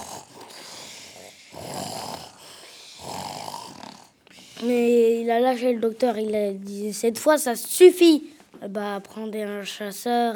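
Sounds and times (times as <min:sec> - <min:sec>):
man snoring loudly with rasping inhales: 0:00.0 - 0:04.8
speech: 0:04.6 - 0:10.3.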